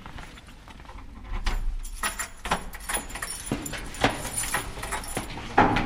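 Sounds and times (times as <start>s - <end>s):
keys jangling and clinking in a lock: 1.3s - 5.7s.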